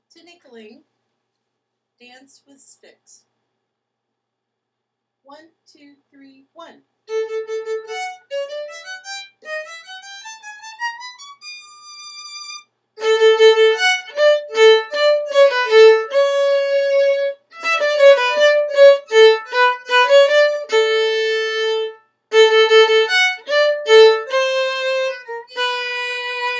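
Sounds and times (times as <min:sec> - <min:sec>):
tinkling easy violin: 0:07.1 - 0:26.5.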